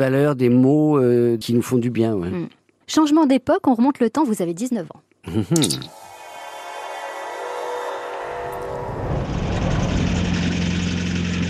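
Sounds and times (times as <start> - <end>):
speech: 0.0 - 6.0
small old car engine droning on the road to Paris: 6.1 - 11.4.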